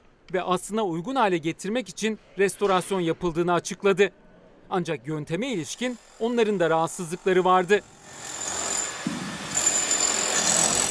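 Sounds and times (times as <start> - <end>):
speech: 0.3 - 8.4
power drill whining: 7.8 - 10.9.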